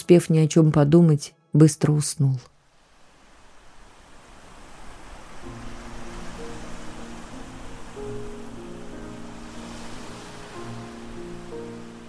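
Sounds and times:
speech: 0.0 - 2.5
sea waves lapping at the shore: 2.6 - 12.0.

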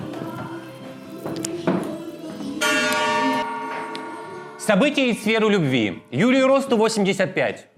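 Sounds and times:
gong being struck: 2.7 - 5.2
speech: 4.7 - 7.7.

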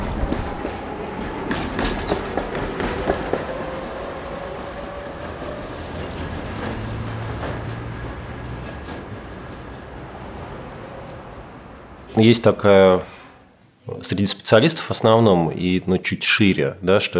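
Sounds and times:
tram rumbling past a building in the historic part of Samara: 0.0 - 13.1
speech: 12.2 - 13.1, 13.9 - 17.1.

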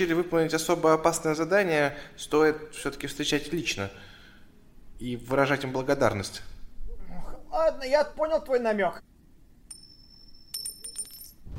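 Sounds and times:
speech: 0.0 - 4.1, 5.0 - 6.6, 7.5 - 9.1
coins dropping and clinking on a hard surface: 9.7 - 11.5.

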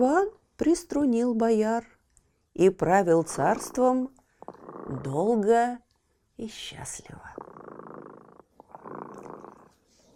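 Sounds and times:
speech: 0.0 - 1.9, 2.6 - 4.2, 4.9 - 5.8, 6.4 - 7.3
cat purring: 3.0 - 5.7, 6.5 - 10.1.

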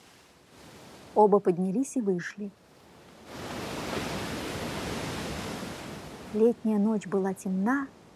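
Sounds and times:
stormy sea waves crashing: 0.0 - 1.2, 2.6 - 6.6
speech: 1.2 - 2.6, 6.3 - 8.0.

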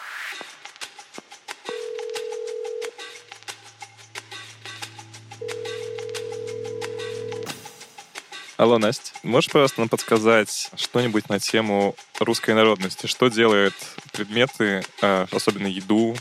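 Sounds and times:
outgoing-call telephone line tone: 1.7 - 3.0, 5.4 - 7.5
low hum: 3.3 - 7.4
speech: 8.6 - 16.2.

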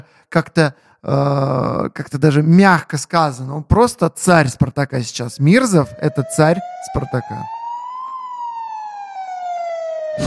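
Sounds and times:
speech: 0.0 - 7.6
ambulance siren wailing: 5.5 - 10.2.

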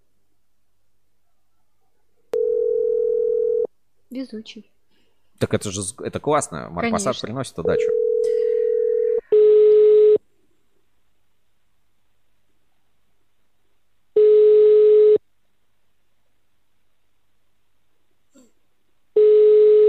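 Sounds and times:
steady low telephone dial tone: 2.4 - 3.7, 7.9 - 10.2, 14.2 - 15.2, 19.2 - 19.8
speech: 4.1 - 4.8, 5.4 - 8.0.

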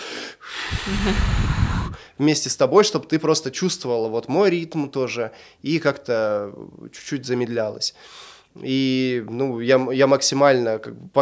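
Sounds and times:
man demonstrating slow rhythmic breathing with long airy exhale: 0.0 - 2.2
speech: 0.8 - 11.2.

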